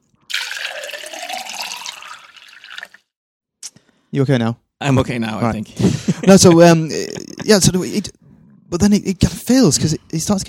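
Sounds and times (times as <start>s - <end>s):
water pouring into a glass: 0.1s - 3.1s
speech: 4.1s - 10.4s
laughter: 5.8s - 8.1s.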